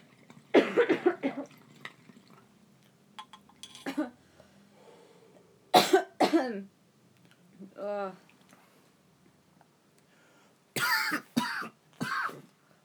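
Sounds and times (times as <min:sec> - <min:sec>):
person coughing after a bong hit: 0:00.6 - 0:01.4, 0:05.8 - 0:06.5, 0:10.8 - 0:12.5.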